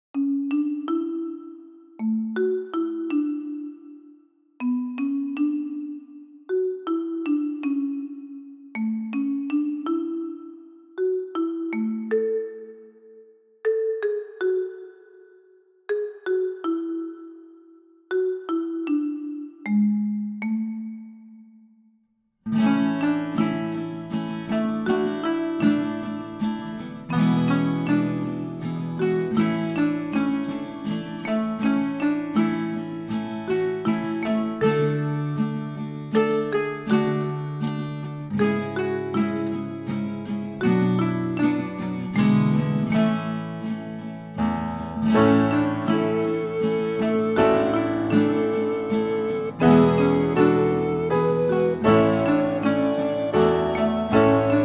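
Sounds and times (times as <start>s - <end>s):
marimba and guitar lullaby: 0.2s - 21.4s, 22.5s - 54.6s.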